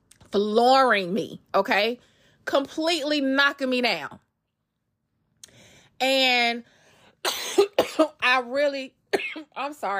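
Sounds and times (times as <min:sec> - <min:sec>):
speech: 0:00.3 - 0:04.2, 0:06.0 - 0:09.9
person coughing: 0:07.2 - 0:08.2, 0:09.1 - 0:09.6.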